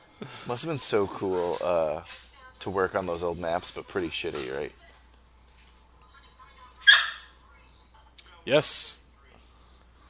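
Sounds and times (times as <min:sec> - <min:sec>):
speech: 0:00.2 - 0:04.9, 0:08.5 - 0:09.0
dog scared by an approaching tornado yelping: 0:06.8 - 0:07.3.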